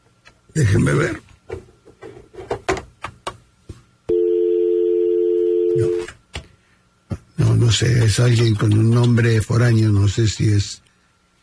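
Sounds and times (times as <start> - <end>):
speech: 0.6 - 1.3, 7.8 - 10.8
telephone ringing with an incoming call: 4.1 - 6.1.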